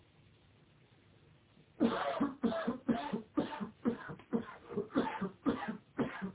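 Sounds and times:
person coughing: 0:01.8 - 0:06.3.

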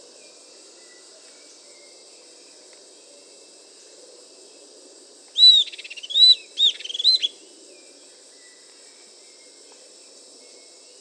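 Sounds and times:
Southern antpipit Corythopis delalandi whistles and trills: 0:05.4 - 0:07.4.

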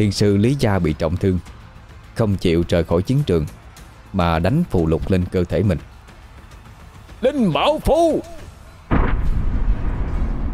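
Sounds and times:
speech: 0:00.0 - 0:01.6, 0:02.2 - 0:05.9, 0:07.2 - 0:08.4
explosion sound effect for a magical energy bomb in a fantasy battle: 0:08.9 - 0:10.5.

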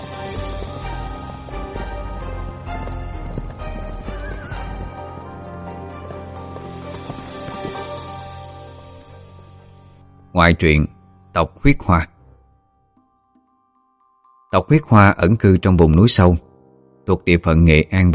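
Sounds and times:
horses of mounted soldiers galloping: 0:00.0 - 0:09.6
horses neighing: 0:02.3 - 0:08.8
speech: 0:10.4 - 0:12.1, 0:14.5 - 0:16.5, 0:17.1 - 0:18.1.

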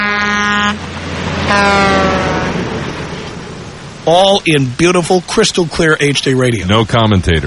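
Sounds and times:
Mack truck air horns racing on a racetrack: 0:00.0 - 0:00.8, 0:01.4 - 0:02.8
steady heavy rumble of Mack truck engines racing on a racetrack: 0:00.0 - 0:07.4
speech: 0:01.5 - 0:02.0, 0:04.1 - 0:07.4.

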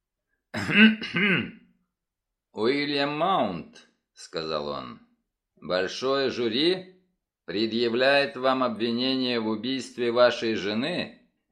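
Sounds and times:
man clearing his throat in a courtroom: 0:00.5 - 0:01.7
speech: 0:00.7 - 0:01.6, 0:02.6 - 0:05.0, 0:05.6 - 0:06.9, 0:07.5 - 0:11.5.

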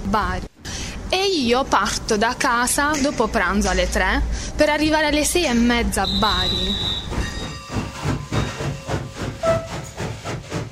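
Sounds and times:
speech: 0:00.1 - 0:00.5, 0:01.1 - 0:07.3
train departing from a station with steam-like chuffs: 0:06.0 - 0:10.7.

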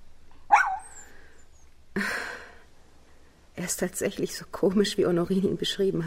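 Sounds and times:
small light-brown dog barking: 0:00.5 - 0:01.0
speech: 0:03.6 - 0:06.0.

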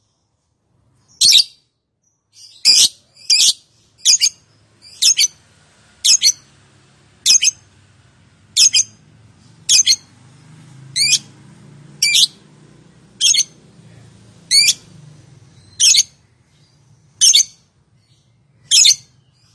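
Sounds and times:
lovebird giving harsh rasping squawks: 0:02.4 - 0:05.4, 0:06.0 - 0:06.4, 0:07.2 - 0:07.6, 0:08.6 - 0:09.0, 0:09.7 - 0:10.1, 0:11.0 - 0:11.3, 0:12.0 - 0:12.4, 0:13.2 - 0:13.6, 0:14.5 - 0:14.8, 0:15.6 - 0:16.2, 0:17.2 - 0:17.6, 0:18.7 - 0:19.1.

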